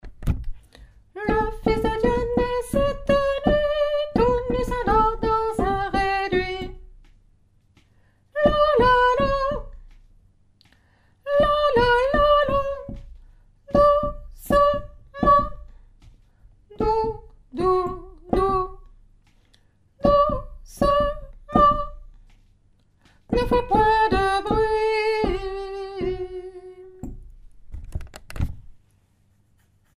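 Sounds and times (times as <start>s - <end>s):
tenor singing: 1.2s - 6.8s, 8.4s - 9.7s, 11.3s - 13.0s, 13.7s - 15.6s, 16.7s - 18.8s, 20.0s - 22.0s, 23.3s - 27.0s.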